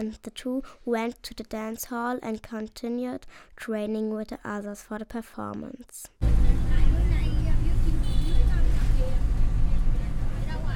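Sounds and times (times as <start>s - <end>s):
speech: 0.0s - 6.5s
school bus engine rumble heard from inside the moving bus: 6.2s - 10.7s.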